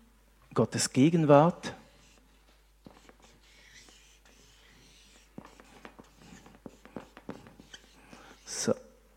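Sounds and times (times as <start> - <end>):
speech: 0.6 - 1.8
pen scratching across a writing surface: 1.2 - 8.7
pen tapping: 2.8 - 8.4.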